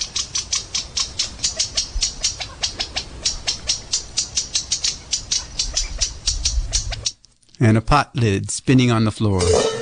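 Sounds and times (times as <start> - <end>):
California quail calling in sharp high chirps: 0.0 - 7.2
speech: 7.6 - 9.7.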